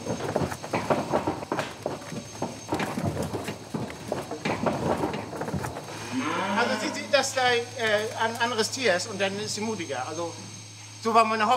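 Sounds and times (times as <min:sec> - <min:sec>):
cow hooves clattering on a hollow ramp: 0:00.0 - 0:09.0
speech: 0:00.1 - 0:00.5, 0:07.2 - 0:11.5.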